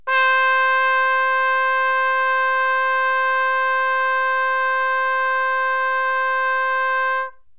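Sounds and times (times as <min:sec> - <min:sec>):
trumpet playing C: 0:00.0 - 0:07.5.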